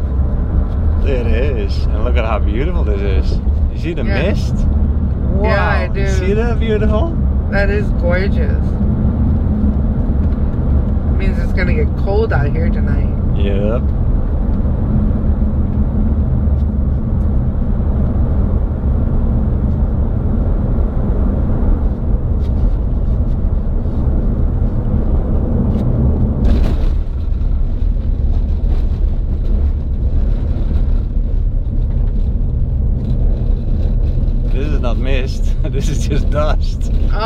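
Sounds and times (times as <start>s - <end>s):
minivan rumbling along a rough dusty dirt road: 0.0s - 37.2s
speech: 1.1s - 8.8s, 11.2s - 14.0s, 35.8s - 37.2s.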